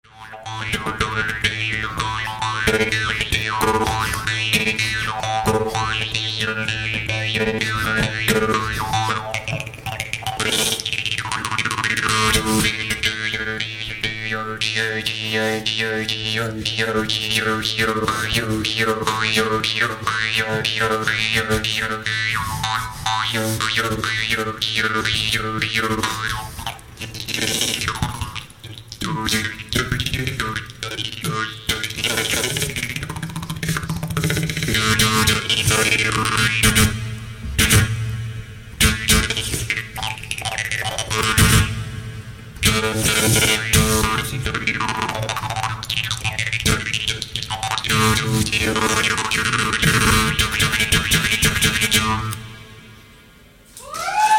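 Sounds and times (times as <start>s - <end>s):
homus jews harp: 0.0s - 37.9s, 38.8s - 41.9s, 42.6s - 52.6s.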